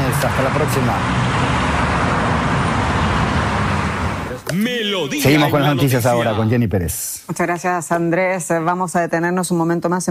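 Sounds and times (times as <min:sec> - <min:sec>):
busy city street traffic of cars and heavier vehicles: 0:00.0 - 0:04.4
speech: 0:00.2 - 0:01.6, 0:04.6 - 0:10.0.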